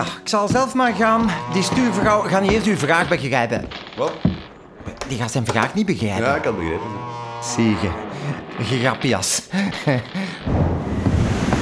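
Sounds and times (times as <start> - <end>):
laughter: 0.0 - 3.6, 5.9 - 10.5
speech: 0.0 - 4.3, 5.1 - 10.9
crashing sea in a storm: 10.5 - 11.5
roar of stormy wind at sea: 10.5 - 11.5.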